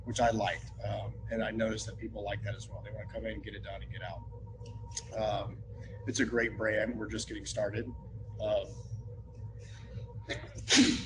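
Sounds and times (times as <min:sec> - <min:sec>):
low murmuring: 0:00.0 - 0:08.9
speech: 0:00.1 - 0:08.9, 0:10.3 - 0:11.0
sharp sneeze: 0:10.3 - 0:11.0.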